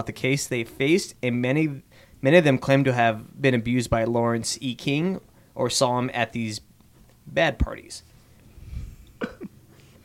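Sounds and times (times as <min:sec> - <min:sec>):
speech: 0:00.0 - 0:08.1
person burping with a low rumble and voiced belch: 0:09.2 - 0:09.5.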